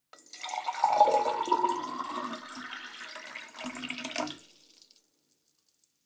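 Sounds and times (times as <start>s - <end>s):
pouring: 0.3s - 5.0s.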